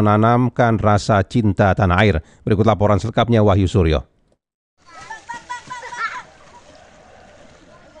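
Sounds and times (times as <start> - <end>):
speech: 0.0 - 4.1
children shouting and chattering excitedly while rafting: 4.8 - 7.9
river water splashing and churning around rafts: 4.8 - 7.9.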